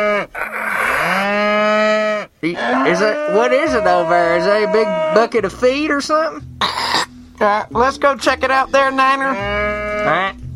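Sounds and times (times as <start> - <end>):
cow mooing: 0.0 - 5.4, 9.3 - 10.4
speech: 2.4 - 6.8, 7.4 - 10.4.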